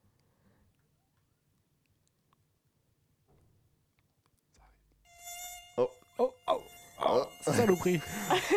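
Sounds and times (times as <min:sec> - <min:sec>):
mosquito whine against the microphone: 0:05.1 - 0:08.5
speech: 0:07.4 - 0:08.5
laughter: 0:07.5 - 0:08.5.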